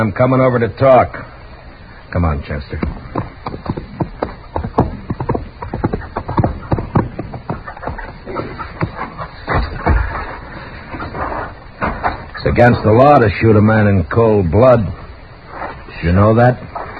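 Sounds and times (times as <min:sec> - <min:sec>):
speech: 0:00.0 - 0:01.3, 0:02.1 - 0:03.6, 0:12.6 - 0:15.0, 0:16.0 - 0:16.7
scared horse's hooves clip-clopping while running away: 0:02.7 - 0:13.0
heavy thump: 0:02.8 - 0:12.3.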